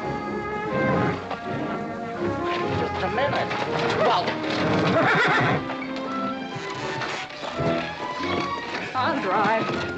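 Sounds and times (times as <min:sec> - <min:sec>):
hooves clopping: 0:00.0 - 0:09.9
speech: 0:03.0 - 0:05.8
horse whinnying: 0:03.6 - 0:09.1.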